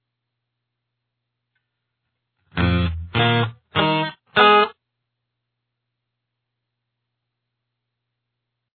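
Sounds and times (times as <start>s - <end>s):
guitar playing octaves: 2.5s - 4.7s.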